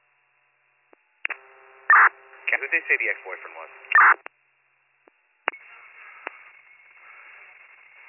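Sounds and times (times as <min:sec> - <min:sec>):
speech: 0:02.0 - 0:04.4
short electronic beeps of a telephone being dialed: 0:04.0 - 0:04.2.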